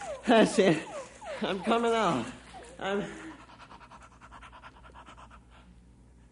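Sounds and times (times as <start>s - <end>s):
dog panting while digging: 0.0s - 6.2s
speech: 0.2s - 3.3s.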